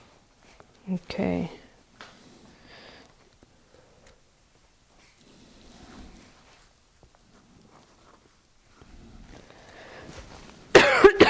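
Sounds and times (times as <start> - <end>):
faint shuffling: 0.0 - 10.8
speech: 0.9 - 1.6
person coughing harshly: 10.7 - 11.2.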